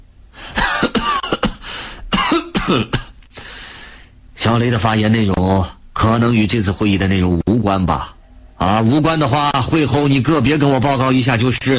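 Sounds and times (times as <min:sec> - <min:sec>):
department head coughing during a tense meeting: 0:00.5 - 0:03.2
speech: 0:02.7 - 0:03.0, 0:04.5 - 0:11.7.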